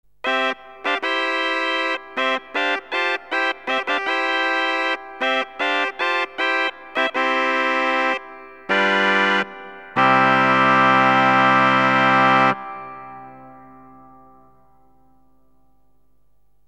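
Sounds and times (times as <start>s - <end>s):
sacral pipe organ chamade 8 stop: 0.2s - 14.6s.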